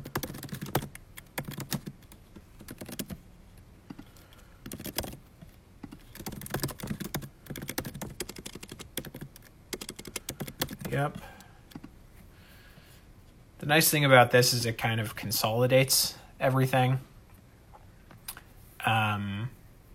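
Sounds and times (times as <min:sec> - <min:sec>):
typing a billing address on a computer keyboard: 0:00.0 - 0:03.2, 0:03.9 - 0:05.2, 0:05.8 - 0:11.9
speech: 0:10.9 - 0:11.4, 0:13.6 - 0:17.1.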